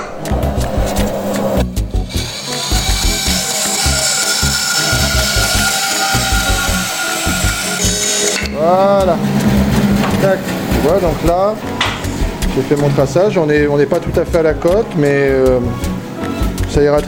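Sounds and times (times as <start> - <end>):
rhythmic thumps: 0.0 - 15.9
saw cutting wood for an instrument part: 1.0 - 11.5
speech: 8.7 - 9.4, 10.2 - 11.8, 12.6 - 15.8, 16.7 - 17.0.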